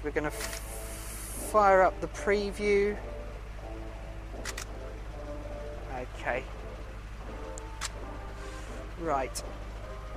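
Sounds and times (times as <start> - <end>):
speech: 0.0 - 0.7, 1.5 - 3.1, 6.0 - 6.6, 9.0 - 9.6
low hum: 0.0 - 10.1
camera shutter firing a test shot via a release cable: 0.3 - 0.8, 4.4 - 4.8, 7.8 - 8.0.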